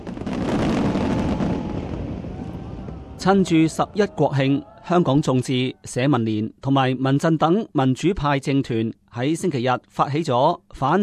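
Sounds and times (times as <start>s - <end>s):
fireworks bursting with booms and crackles: 0.0s - 4.0s
speech: 3.2s - 11.0s.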